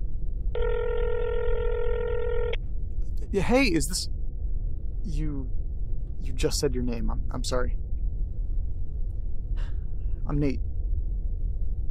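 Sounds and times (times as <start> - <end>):
low rumbling hiss: 0.0 - 11.8
ringback tone on a phone line: 0.6 - 2.6
speech: 3.3 - 4.2, 5.0 - 5.6, 6.2 - 7.8, 10.3 - 10.7.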